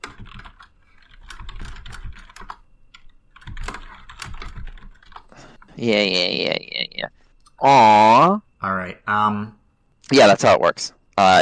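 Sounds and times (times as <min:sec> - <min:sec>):
crisp keyboard typing: 0:00.0 - 0:05.8
speech: 0:05.8 - 0:11.4.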